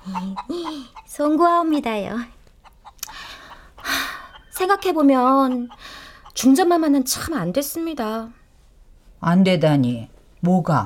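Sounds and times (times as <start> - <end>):
chicken clucking: 0.0 - 7.0
speech: 0.1 - 2.4, 4.6 - 5.8, 6.4 - 8.4, 9.2 - 10.8.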